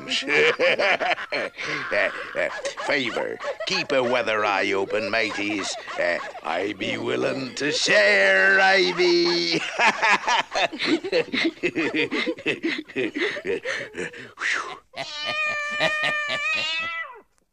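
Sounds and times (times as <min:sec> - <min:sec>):
person chattering and chuckling: 0:00.0 - 0:17.0
speech: 0:00.1 - 0:17.0
cat meowing: 0:15.0 - 0:17.3.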